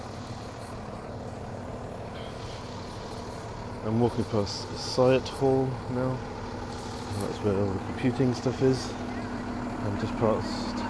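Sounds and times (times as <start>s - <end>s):
lorry or delivery vehicle engine rumble by a building's goods entrance: 0.0s - 10.8s
speech: 3.8s - 6.4s, 7.2s - 9.2s, 9.8s - 10.8s.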